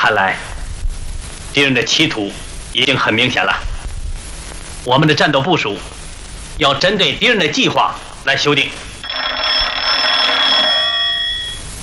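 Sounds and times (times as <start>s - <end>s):
speech: 0.0s - 0.5s, 1.5s - 3.7s, 4.8s - 6.0s, 6.6s - 8.8s
bright metallic telephone bell ringing: 9.0s - 11.7s.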